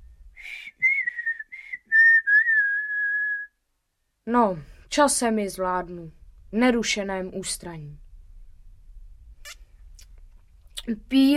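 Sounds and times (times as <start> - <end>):
person whistling a short melodic tune: 0.4 - 3.5
speech: 4.3 - 8.0, 10.9 - 11.3.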